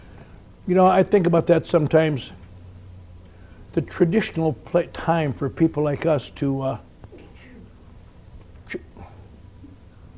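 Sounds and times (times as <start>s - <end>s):
speech: 0.7s - 2.4s, 3.7s - 6.9s
person sneezing: 8.7s - 9.2s.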